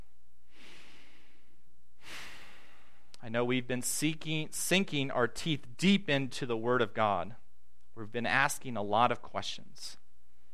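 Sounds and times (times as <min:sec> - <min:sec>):
deep breath with long airy inhale and sharp exhale: 0:00.4 - 0:03.2
speech: 0:03.3 - 0:07.4, 0:08.0 - 0:10.0.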